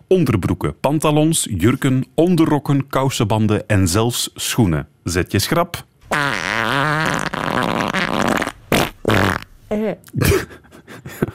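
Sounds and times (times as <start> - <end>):
speech: 0.1 - 6.4, 9.7 - 11.3
loud drawn-out wet explosive fart: 6.1 - 9.5
laughter: 10.2 - 11.3.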